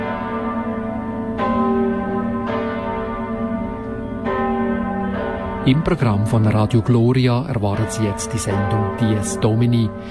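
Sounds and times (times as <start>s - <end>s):
collegiate church bells pealing: 0.0s - 10.0s
speech: 5.6s - 10.0s.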